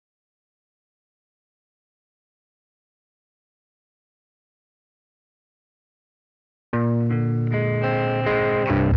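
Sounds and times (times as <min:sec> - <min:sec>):
clean guitar: 0:06.8 - 0:08.9.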